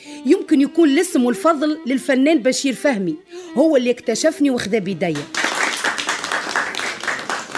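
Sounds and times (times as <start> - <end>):
speech: 0.0 - 5.4
audience applause: 5.2 - 7.5.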